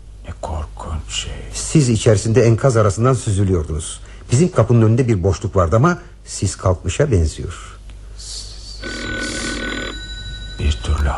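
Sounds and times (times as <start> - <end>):
low steady hum: 0.0 - 11.1
speech: 1.1 - 7.8
telephone ringing with shrill bright electronic tone: 8.8 - 11.1.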